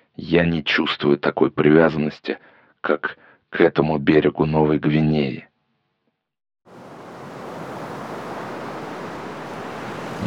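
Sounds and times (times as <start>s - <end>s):
speech: 0.2s - 5.5s
heavy stormy sea waves crashing onto a ship off New Guinea: 6.7s - 10.2s.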